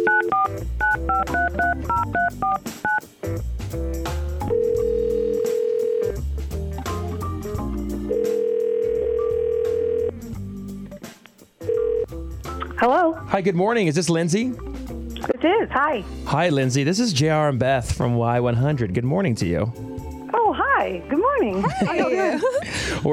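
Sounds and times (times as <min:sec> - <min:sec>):
telephone keypad beeps dialing a number: 0:00.0 - 0:03.0
radio music bed: 0:00.1 - 0:23.1
speech: 0:12.8 - 0:14.7, 0:15.8 - 0:19.9, 0:20.9 - 0:23.1
laughter: 0:21.5 - 0:23.1.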